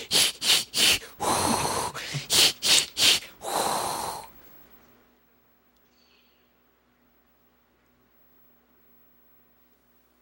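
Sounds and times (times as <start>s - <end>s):
person gasping and breathing heavily, pretending to struggle for air: 0.0s - 4.3s.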